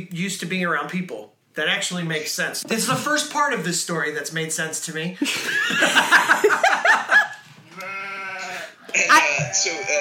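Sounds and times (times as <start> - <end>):
speech: 0.0 - 7.2, 9.0 - 9.9
goats bleating: 7.6 - 8.8.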